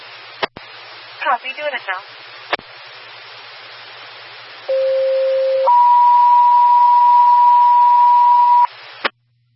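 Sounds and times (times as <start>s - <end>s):
static-filled radio channel hiss: 0.0s - 5.8s, 8.2s - 9.2s
speech: 1.2s - 2.7s
radio dispatch test tones: 4.7s - 8.7s.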